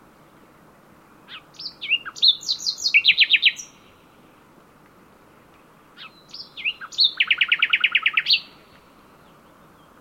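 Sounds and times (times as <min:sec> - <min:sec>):
common nightingale Luscinia megarhynchos singing: 0:01.3 - 0:03.9, 0:06.0 - 0:09.9.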